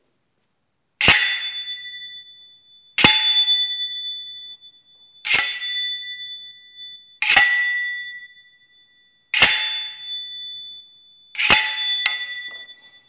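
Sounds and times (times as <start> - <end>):
fencing blade striking a bell guard: 1.0 - 2.3, 3.0 - 4.2, 5.2 - 8.4, 9.3 - 10.8, 11.4 - 13.0
fencing blade gliding: 11.4 - 12.5.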